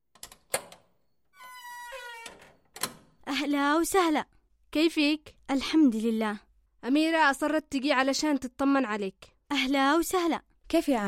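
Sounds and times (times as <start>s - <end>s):
door latch clicks: 0.1s - 1.0s, 1.8s - 3.2s
door hinge creaking squeal: 0.3s - 3.2s
speech: 3.4s - 11.0s.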